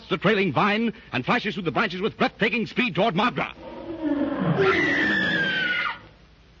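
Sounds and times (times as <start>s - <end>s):
speech: 0.1s - 3.8s, 4.6s - 5.1s
lion roaring: 3.5s - 6.0s.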